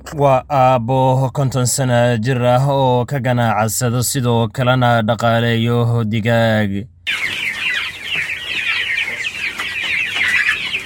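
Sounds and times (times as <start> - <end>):
speech: 0.1 - 7.4
hens clucking at a poultry farm: 7.1 - 10.8.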